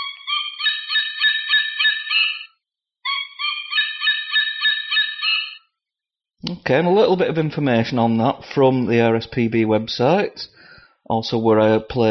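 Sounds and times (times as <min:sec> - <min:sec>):
artificial white-tailed eagle call from a musical bird toy: 0:00.0 - 0:05.7
speech: 0:06.4 - 0:12.0.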